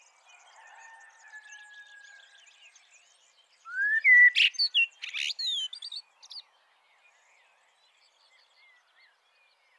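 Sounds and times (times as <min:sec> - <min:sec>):
Eurasian blackbird Turdus merula singing warbles and whistles: 0:03.7 - 0:06.0.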